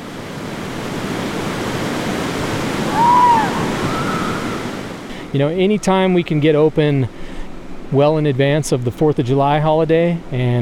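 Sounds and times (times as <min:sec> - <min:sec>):
flowing river water: 0:00.0 - 0:10.6
faint whistle-like tone: 0:02.9 - 0:04.6
speech: 0:05.3 - 0:07.2, 0:07.9 - 0:10.6.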